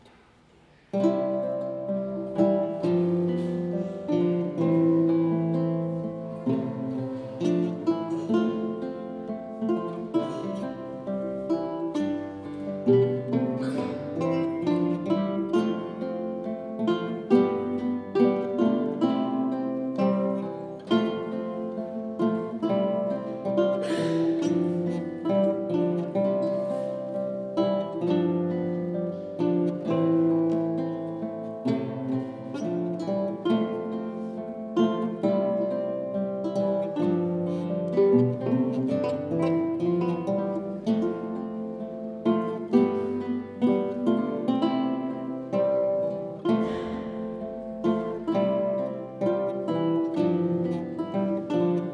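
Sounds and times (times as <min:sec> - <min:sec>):
small guitars playing: 0:00.0 - 0:51.9.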